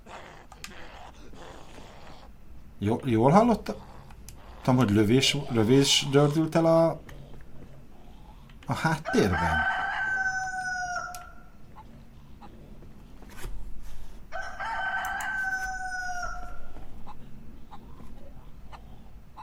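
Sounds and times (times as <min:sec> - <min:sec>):
steady hum: 0:00.0 - 0:19.4
speech: 0:02.8 - 0:03.9, 0:04.7 - 0:07.2, 0:08.7 - 0:09.8
rooster crowing: 0:08.8 - 0:11.6, 0:14.3 - 0:17.0.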